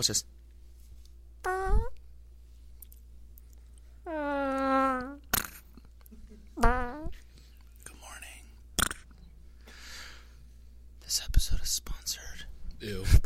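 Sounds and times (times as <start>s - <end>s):
speech: 0.0s - 0.4s, 11.2s - 13.2s
long buzzy fart: 1.4s - 2.0s, 4.0s - 5.8s, 6.6s - 7.2s, 8.8s - 9.1s
squeaky whining tonal bursts: 1.5s - 1.9s.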